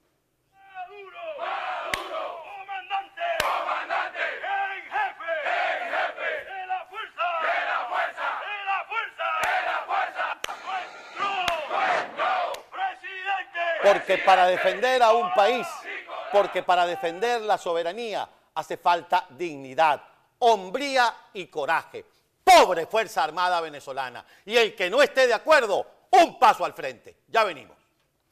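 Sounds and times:
large group of soldiers shouting slogans in unison: 0:00.6 - 0:17.2
speech: 0:13.8 - 0:27.8.

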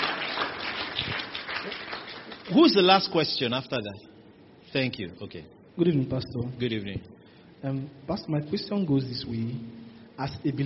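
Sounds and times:
audience clapping: 0:00.0 - 0:03.0
speech: 0:02.5 - 0:04.1, 0:04.7 - 0:10.6.

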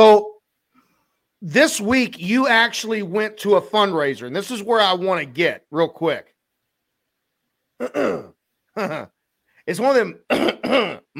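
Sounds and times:
speech: 0:00.0 - 0:00.3, 0:01.4 - 0:06.3, 0:07.8 - 0:11.1
person clearing throat: 0:07.8 - 0:09.1, 0:10.3 - 0:11.1.

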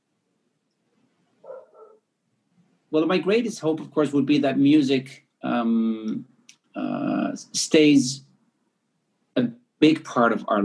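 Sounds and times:
dog barking: 0:01.4 - 0:02.1
speech: 0:02.9 - 0:08.3, 0:09.4 - 0:10.6.

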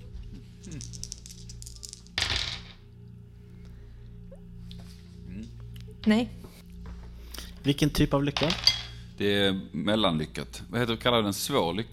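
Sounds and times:
low steady hum: 0:00.0 - 0:11.9
dice tumbling onto a surface: 0:00.6 - 0:02.8
speech: 0:06.0 - 0:06.4, 0:07.6 - 0:11.9.

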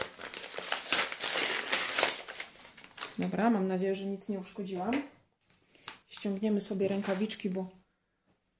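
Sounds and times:
paper envelope being torn open: 0:00.0 - 0:03.2
speech: 0:03.2 - 0:05.2, 0:06.2 - 0:07.8.

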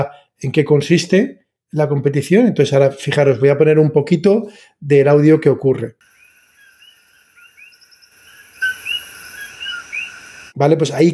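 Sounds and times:
speech: 0:00.0 - 0:06.1, 0:10.6 - 0:11.1
high-pitched insect trilling in a rainforest: 0:06.0 - 0:10.6
bird whistles and chirps in a rainforest: 0:06.2 - 0:10.4.

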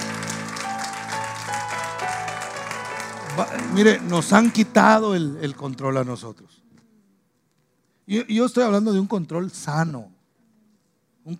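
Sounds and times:
audience applauding: 0:00.0 - 0:06.1
sustained organ-like tones: 0:00.0 - 0:06.1
speech: 0:03.4 - 0:06.6, 0:08.1 - 0:10.1.

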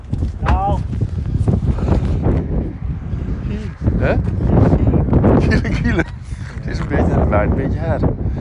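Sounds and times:
wind buffeting microphone: 0:00.0 - 0:08.3
speech: 0:04.0 - 0:04.4, 0:05.5 - 0:06.2, 0:07.3 - 0:08.3
laughter: 0:05.4 - 0:06.6.

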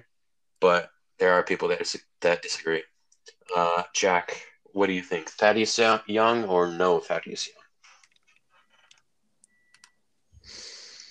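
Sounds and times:
speech: 0:00.6 - 0:07.6
typing on a computer keyboard: 0:08.0 - 0:10.0.

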